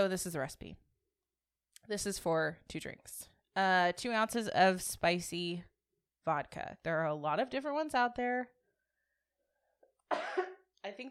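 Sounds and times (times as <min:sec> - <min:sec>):
speech: 0:00.0 - 0:00.9, 0:01.8 - 0:08.6, 0:10.1 - 0:11.0
person coughing harshly from drinking spicy pepper vodka: 0:10.1 - 0:10.7.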